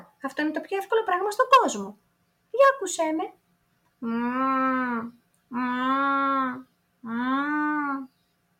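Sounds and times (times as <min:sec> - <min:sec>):
speech: 0:00.2 - 0:03.4, 0:04.0 - 0:08.1
person imitating a cow with long nasal moos: 0:04.0 - 0:08.1.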